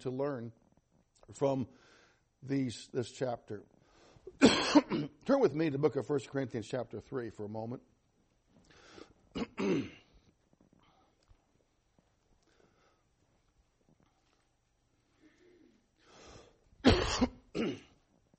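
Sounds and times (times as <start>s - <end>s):
speech: 0.0s - 0.6s, 1.3s - 3.8s, 4.4s - 7.9s, 9.3s - 10.0s
person clearing throat: 4.4s - 5.2s, 9.3s - 10.1s, 16.8s - 18.0s
person coughing: 4.4s - 5.2s, 9.4s - 10.1s, 16.8s - 18.0s.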